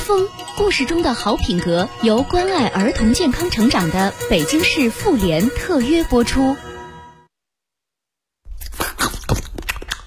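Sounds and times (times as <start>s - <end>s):
speech: 0.1s - 6.7s
crisp crunching of a raw carrot being chewed: 8.5s - 10.0s.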